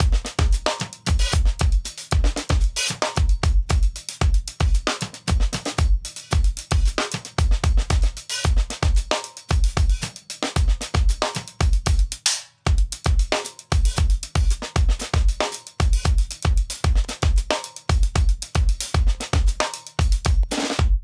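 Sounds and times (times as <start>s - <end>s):
double hi-hat drum loop at 114 bpm: 0.0s - 21.0s.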